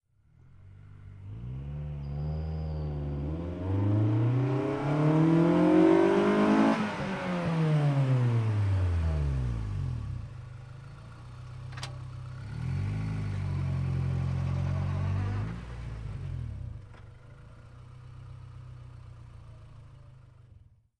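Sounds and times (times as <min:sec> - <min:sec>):
Acura Integra engine revving with soft shift: 0:00.3 - 0:20.2.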